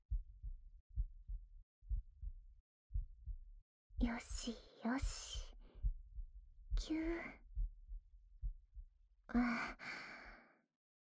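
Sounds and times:
heartbeat thumping in lub-dub pairs: 0.0 - 9.8
speech: 4.0 - 5.5, 6.8 - 7.4, 9.3 - 10.1
person whispering softly: 4.0 - 5.6.

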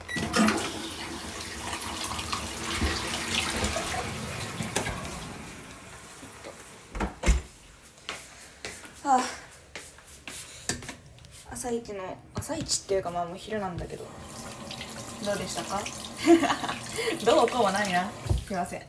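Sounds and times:
tap water running into a sink while washing hands: 0.2 - 5.9, 13.9 - 18.8
speech: 11.6 - 14.3, 15.2 - 18.8.

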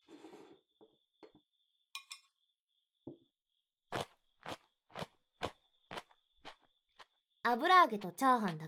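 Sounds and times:
crunching raw daikon sticks dipped in miso mayonnaise: 3.9 - 7.2
speech: 7.5 - 8.6.

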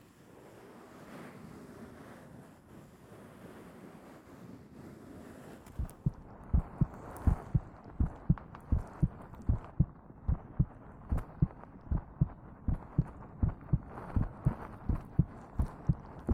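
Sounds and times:
faint low hum: 5.7 - 16.3
human heartbeat with lub-dub thumps: 5.7 - 16.3.

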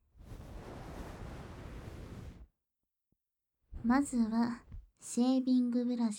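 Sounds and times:
damp hot towel rustling as laid over the face before shaving: 0.1 - 2.4
speech: 3.8 - 6.1.

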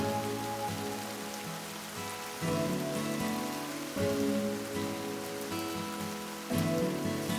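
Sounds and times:
soft sustained tones: 0.0 - 5.9
steady rain: 0.0 - 7.3.

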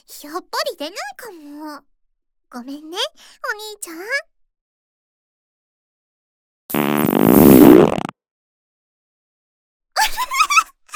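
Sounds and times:
speech: 0.0 - 1.9, 2.5 - 4.3
fart: 6.7 - 8.2.

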